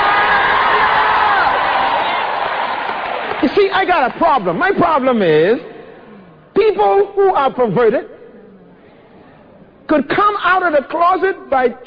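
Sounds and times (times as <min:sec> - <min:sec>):
large church audience screaming and cheering: 0:00.0 - 0:03.5
speech: 0:03.4 - 0:05.7, 0:06.6 - 0:08.1, 0:09.9 - 0:11.8.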